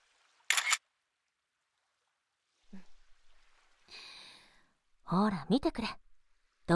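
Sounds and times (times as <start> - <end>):
camera shutter click taking a photo: 0.5 - 0.8
faint breathy sound: 3.8 - 4.8
speech: 5.1 - 6.0.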